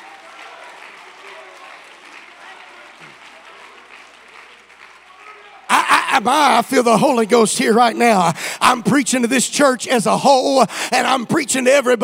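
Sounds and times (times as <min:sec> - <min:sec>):
church audience clapping: 0:00.0 - 0:07.8
laughter: 0:05.7 - 0:08.9
speech: 0:06.2 - 0:12.0.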